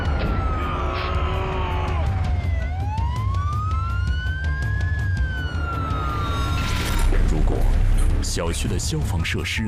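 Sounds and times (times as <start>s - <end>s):
ambulance siren wailing: 0.0s - 7.1s
speech: 8.4s - 9.6s.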